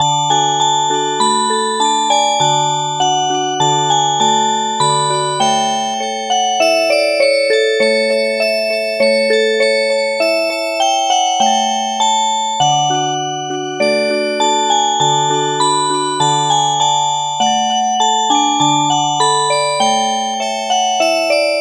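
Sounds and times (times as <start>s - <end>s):
music box playing an oberek: 0.0s - 21.5s.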